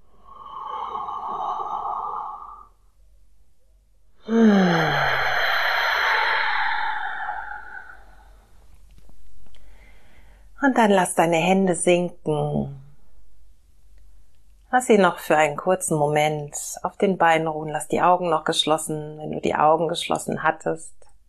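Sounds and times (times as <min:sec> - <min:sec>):
slow deep breath in and out during a guided relaxation exercise: 0:00.0 - 0:03.0, 0:04.2 - 0:08.6, 0:09.5 - 0:10.6
speech: 0:10.8 - 0:12.8, 0:14.8 - 0:21.0.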